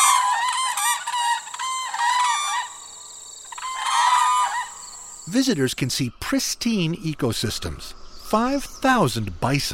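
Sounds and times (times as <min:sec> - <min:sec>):
whooping cranes bugling in wetlands of the Peace and Athabasca rivers: 0:00.0 - 0:05.5
speech: 0:05.3 - 0:09.7.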